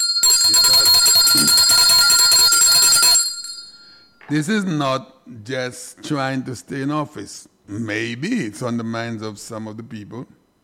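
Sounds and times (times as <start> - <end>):
loud metallic bell ringing: 0.0 - 4.2
speech: 4.3 - 10.4.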